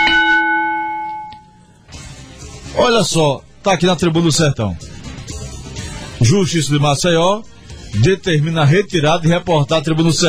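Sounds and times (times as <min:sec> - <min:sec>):
bell struck hard ringing: 0:00.0 - 0:01.7
speech: 0:02.8 - 0:05.0, 0:06.2 - 0:10.2.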